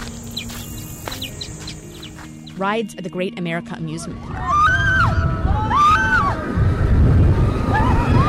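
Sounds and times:
birds chirping in quick high tweets: 0.0 - 3.6
steady outdoor hum: 0.0 - 8.2
speech: 2.6 - 4.8.

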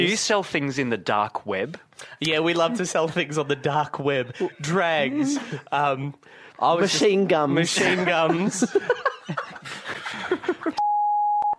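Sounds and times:
speech: 0.0 - 10.8
laughter: 2.6 - 6.0, 6.9 - 10.8
steady single-pitched censor beep: 10.8 - 11.5.

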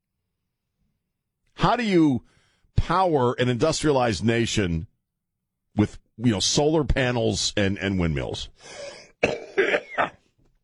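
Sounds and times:
speech: 1.6 - 4.9, 5.8 - 9.6
person coughing: 8.9 - 10.4.

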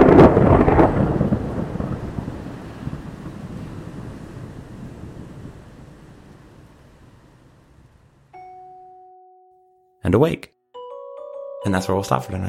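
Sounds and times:
loud booming thunder crack: 0.0 - 8.3
speech: 10.1 - 10.6, 11.6 - 12.4.

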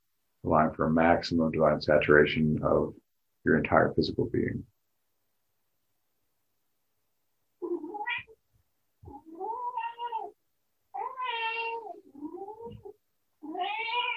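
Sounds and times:
speech: 0.4 - 4.7
female pet cat meowing loudly: 7.6 - 8.4, 9.0 - 14.1.

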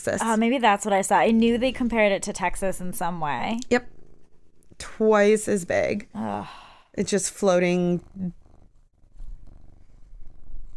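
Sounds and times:
speech: 0.0 - 4.0, 4.8 - 8.4
cat purring: 1.5 - 6.4, 7.1 - 10.7.

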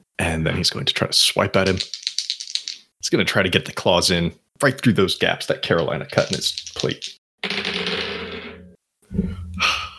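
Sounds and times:
speech: 0.3 - 2.0, 3.1 - 7.6
dice rattling across a hard tabletop: 1.7 - 2.9, 6.1 - 8.4.

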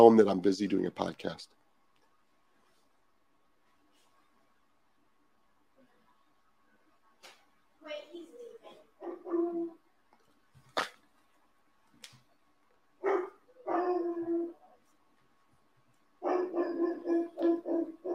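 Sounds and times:
speech: 0.0 - 1.6
dogs barking at a home with someone at the door: 9.0 - 9.8, 13.0 - 14.6, 16.2 - 18.1.

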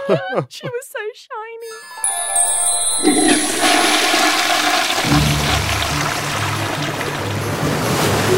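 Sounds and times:
speech: 0.1 - 1.8, 3.0 - 5.3
toilet flushing: 2.0 - 8.3
toilet flush click: 3.0 - 8.2.

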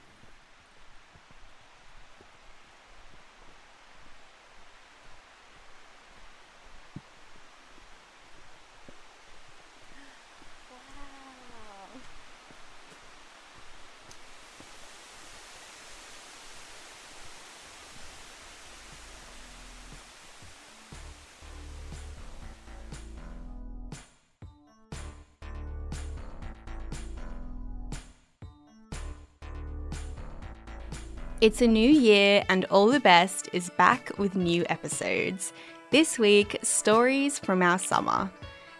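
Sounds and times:
waterfall roaring: 0.6 - 21.5
speech: 31.4 - 38.4.

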